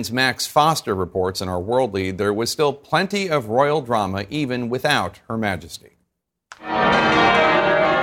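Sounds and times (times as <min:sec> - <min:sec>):
speech: 0:00.0 - 0:05.9
deep cathedral bell tolling: 0:06.6 - 0:08.0.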